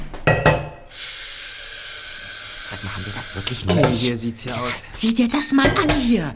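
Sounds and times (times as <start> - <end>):
dishes and mugs clinking while washing up in a kitchen: 0.2 - 0.9, 3.7 - 4.1
steady loud hiss of running water or steam: 0.9 - 4.2
speech: 3.7 - 6.3.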